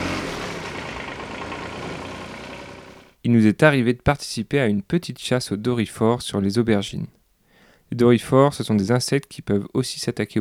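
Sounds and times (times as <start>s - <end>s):
tractor engine running while driven along crop rows: 0.0s - 3.2s
speech: 3.2s - 7.2s, 7.9s - 10.3s.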